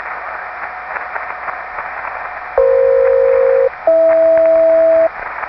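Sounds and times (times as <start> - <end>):
aeronautical SELCAL tones: 2.6 - 5.1.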